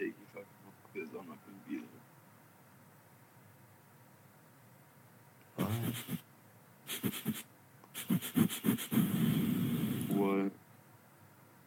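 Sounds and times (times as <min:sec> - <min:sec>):
heavy breathing: 0:05.6 - 0:06.2, 0:06.9 - 0:10.2
speech: 0:05.9 - 0:06.3.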